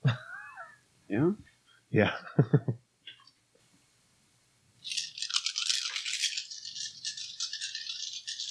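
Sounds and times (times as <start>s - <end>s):
speech: 1.1s - 2.8s
handful of dice being shaken and rolled: 4.8s - 8.4s.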